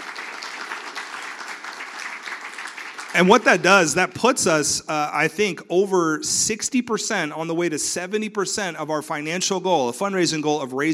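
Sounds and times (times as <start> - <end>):
crowd at a school fundraiser applauding: 0.0 - 4.1
speech: 3.2 - 10.9.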